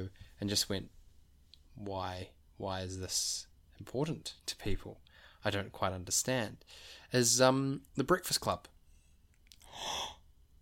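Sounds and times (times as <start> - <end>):
speech: 0.0 - 1.0, 1.8 - 8.8
person gasping: 9.6 - 10.3.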